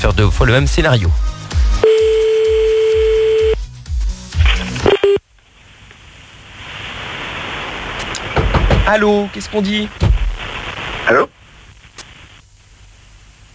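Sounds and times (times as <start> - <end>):
speech: 0.0 - 1.8, 8.9 - 10.1, 11.1 - 11.4
steady telephone beep: 1.8 - 3.6
steady hiss of an open telephone line: 4.4 - 13.5.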